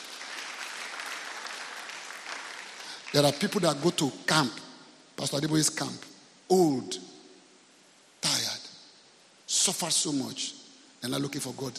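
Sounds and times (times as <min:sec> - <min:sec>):
audience clapping at a sermon: 0:00.0 - 0:03.9
speech: 0:03.1 - 0:04.6, 0:05.2 - 0:07.1, 0:09.7 - 0:11.7.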